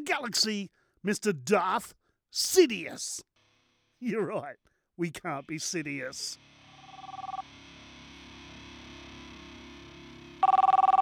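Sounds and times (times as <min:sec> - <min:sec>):
speech: 0:00.0 - 0:03.3, 0:04.0 - 0:06.5
telephone ringing: 0:06.9 - 0:07.4, 0:10.4 - 0:10.9.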